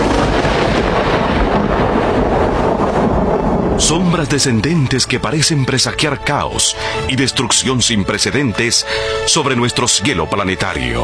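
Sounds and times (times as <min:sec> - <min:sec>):
howling wind: 0:00.0 - 0:07.5
thunder rumbling: 0:00.0 - 0:08.8
storm breaking out roaring: 0:00.0 - 0:09.2
speech: 0:03.9 - 0:11.0.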